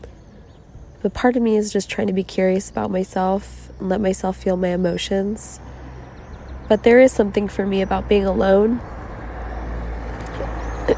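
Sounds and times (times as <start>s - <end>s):
road traffic with cars going by: 0.0s - 10.9s
speech: 1.0s - 5.6s, 6.7s - 8.9s.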